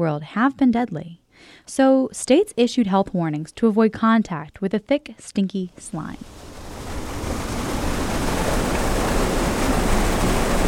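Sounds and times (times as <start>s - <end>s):
speech: 0.0s - 6.5s
water flowing at a drinking water treatment plant in Huntington, West Virginia: 5.8s - 10.6s.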